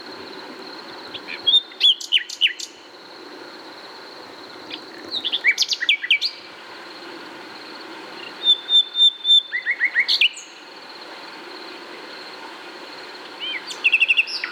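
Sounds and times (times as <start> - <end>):
common nightingale singing: 1.1 - 2.8, 4.7 - 6.4, 8.2 - 10.6, 13.4 - 14.5.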